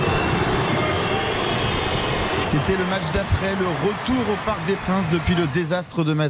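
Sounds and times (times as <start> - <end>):
large stadium crowd whistling and roaring at players: 0.0 - 6.2
speech: 2.5 - 6.2.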